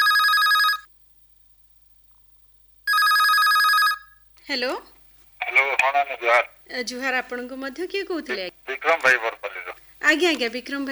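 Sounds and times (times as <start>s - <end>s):
telephone ringing with an incoming call, trilling electronic ring: 0.0s - 0.9s, 2.9s - 4.2s
speech: 4.5s - 10.8s.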